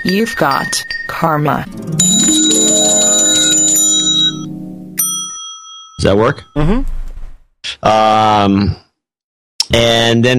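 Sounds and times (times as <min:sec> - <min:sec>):
speech: 0:00.0 - 0:02.6, 0:06.0 - 0:07.0, 0:07.8 - 0:08.8, 0:09.7 - 0:10.3
bell struck ringing with a bright metallic tone: 0:01.6 - 0:06.6.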